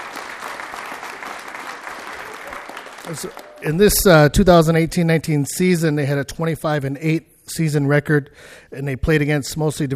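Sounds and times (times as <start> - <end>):
room full of people clapping: 0.0 - 3.8
speech: 3.0 - 9.9.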